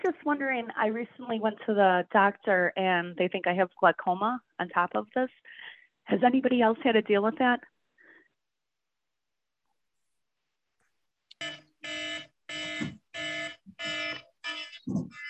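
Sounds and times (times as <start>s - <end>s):
speech: 0.1s - 7.7s
electronic alarm beeping in long harmonic pulses: 11.3s - 15.2s.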